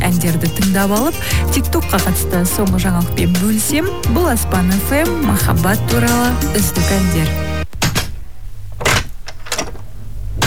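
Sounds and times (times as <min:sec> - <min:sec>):
speech: 0:00.1 - 0:07.6
door being handled and shut: 0:02.8 - 0:10.4.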